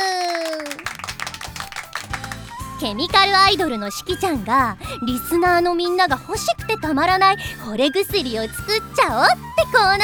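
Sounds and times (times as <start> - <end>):
light faint applause: 0.0 - 3.7
speech: 2.8 - 10.0.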